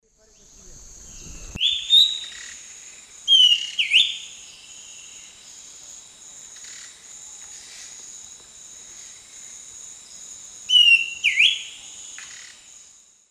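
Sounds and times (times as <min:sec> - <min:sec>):
Schiffornis major song: 0:00.1 - 0:05.6, 0:10.7 - 0:12.6.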